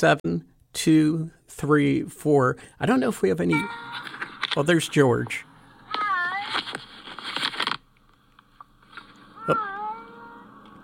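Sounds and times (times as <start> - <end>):
speech: 0.0 - 6.6, 9.5 - 9.7
cat meowing with a long wavering yowl: 9.4 - 10.6.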